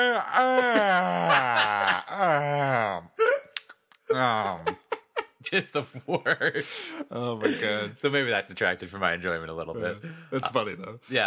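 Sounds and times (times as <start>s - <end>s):
speech: 0.0s - 2.5s, 5.5s - 11.2s
voice mimicking loud exaggerated yawns of an unimpressed moviegoer: 0.0s - 4.7s
laughter: 0.2s - 3.0s, 4.1s - 8.0s.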